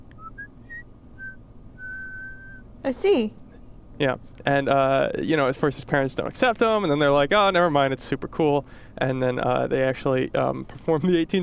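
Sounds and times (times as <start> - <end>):
soft breathy whistling of a wandering tune: 0.1 - 2.7
speech: 2.8 - 3.4, 4.0 - 11.4.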